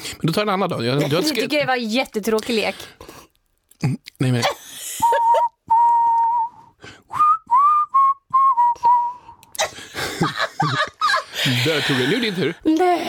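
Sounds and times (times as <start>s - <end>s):
speech: 0.2s - 5.5s, 11.5s - 13.0s
person whistling a short wavering tune: 5.0s - 9.5s
laughter: 9.6s - 12.5s.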